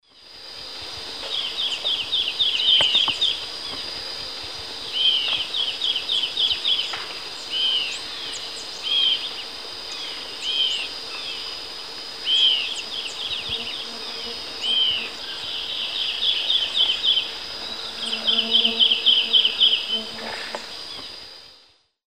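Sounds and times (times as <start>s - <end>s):
Hylophilus thoracicus song in the Eastern Lowlands of South America: 1.2s - 3.9s, 4.9s - 11.5s, 12.2s - 20.1s.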